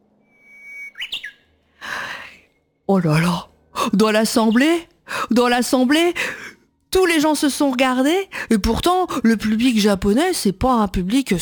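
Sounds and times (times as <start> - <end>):
two performers whistling Japanese bush warbler song imitation: 0.2 - 1.4
speech: 2.9 - 11.4.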